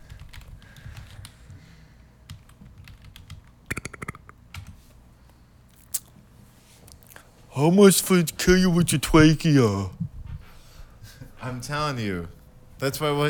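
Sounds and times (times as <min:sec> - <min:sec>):
typing on a computer keyboard: 0:00.0 - 0:01.4, 0:02.3 - 0:04.7
low hum: 0:00.0 - 0:13.2
speech: 0:07.6 - 0:10.0, 0:11.6 - 0:13.2.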